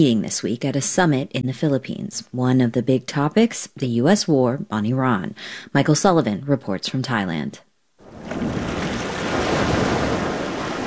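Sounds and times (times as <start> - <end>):
speech: 0.0 - 8.6
ocean surf washing onto a beach in Krabi, Thailand, on the Andaman Sea: 8.0 - 10.8
wind: 8.0 - 10.8.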